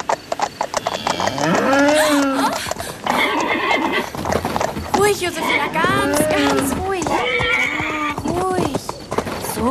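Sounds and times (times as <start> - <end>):
light hoof-like taps during a moonlit horseback ride: 0.0 - 9.6
cow mooing: 1.0 - 2.3.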